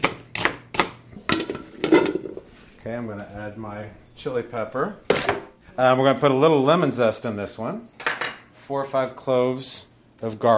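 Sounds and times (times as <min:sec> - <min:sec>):
knife chopping onions in a kitchen: 0:00.0 - 0:01.0
speech: 0:02.8 - 0:08.0, 0:08.7 - 0:10.5.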